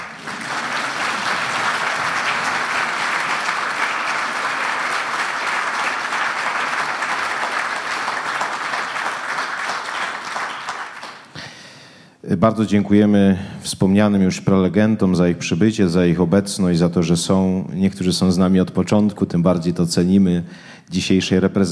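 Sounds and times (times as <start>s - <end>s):
audience applause in a congress hall: 0.0s - 11.3s
speech: 12.4s - 21.7s.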